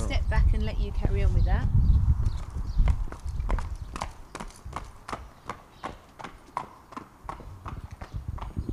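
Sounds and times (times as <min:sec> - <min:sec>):
speech: 0:00.7 - 0:01.9
horse hooves trotting on a hard surface during a trot-up: 0:02.2 - 0:08.7.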